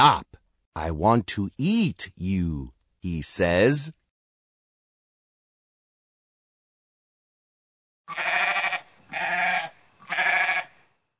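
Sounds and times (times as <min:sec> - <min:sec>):
speech: 0:00.0 - 0:04.0, 0:08.1 - 0:08.5
goat bleating: 0:08.1 - 0:10.7.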